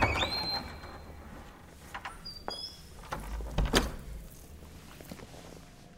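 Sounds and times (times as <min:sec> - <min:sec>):
door closing: 0:00.0 - 0:04.3.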